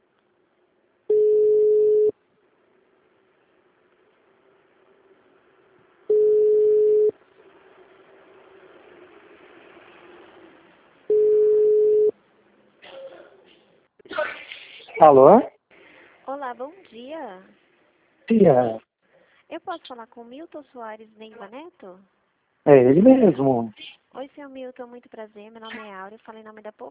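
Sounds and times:
faint hiss: 0.0s - 26.1s
telephone ringback tone while a call connects: 1.1s - 2.1s, 6.1s - 7.1s, 11.1s - 12.1s
speech: 15.0s - 15.5s, 16.6s - 17.6s, 18.3s - 18.8s, 19.5s - 26.8s.

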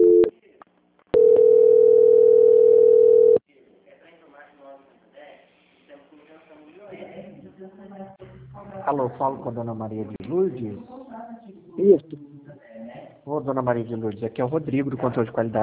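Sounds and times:
telephone tone while a call is transferred to a bank's quality-control line: 0.0s - 0.3s, 1.2s - 3.4s
speech: 9.0s - 11.0s, 11.8s - 12.3s, 13.3s - 15.6s.

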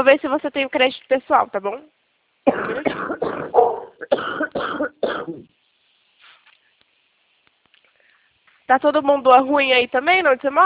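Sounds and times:
speech: 0.0s - 5.6s, 8.7s - 10.6s
loud harsh raspy smoker's cough: 2.5s - 5.5s.

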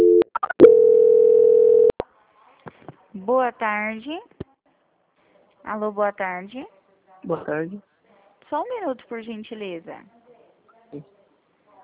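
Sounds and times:
telephone line tones during a call transfer: 0.0s - 1.9s
speech: 3.3s - 4.4s, 5.6s - 7.9s, 8.5s - 10.2s, 10.9s - 11.1s.

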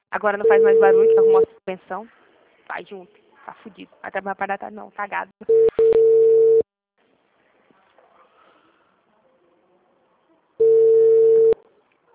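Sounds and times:
speech: 0.1s - 5.7s
ringback tone of an outgoing telephone call: 5.5s - 6.6s, 10.6s - 11.6s.

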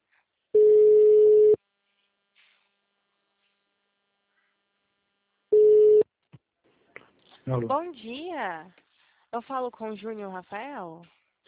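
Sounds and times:
low-pitched telephone line beeps during a dropped call: 0.6s - 1.6s, 5.5s - 6.0s
speech: 7.5s - 11.2s.

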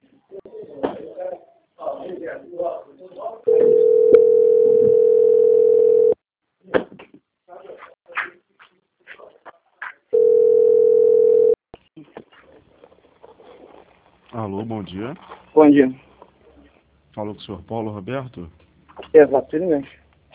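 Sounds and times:
telephone tone while a bank call is transferred: 3.5s - 6.2s, 10.2s - 11.6s
speech: 14.7s - 16.0s, 17.2s - 20.0s.

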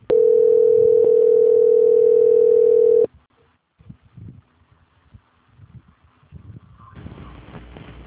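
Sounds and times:
steady single-pitch telephone call transfer tone: 0.1s - 3.1s.

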